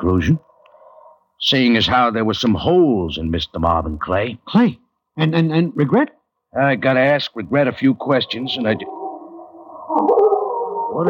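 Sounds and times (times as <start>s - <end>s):
speech: 0.0s - 0.5s, 1.4s - 9.0s, 9.9s - 10.2s
bloodhounds howling in a wavering chorus: 8.1s - 11.0s.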